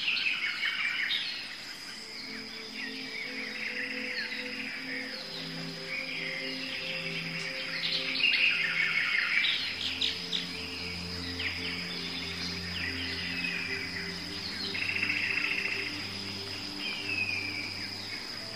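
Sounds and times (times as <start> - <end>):
many birds chirping and squawking in a tropical rainforest: 0.0 - 18.5
steady high insect whine in a tropical rainforest: 0.0 - 18.5
low hooting notes in a tropical rainforest: 2.0 - 18.5.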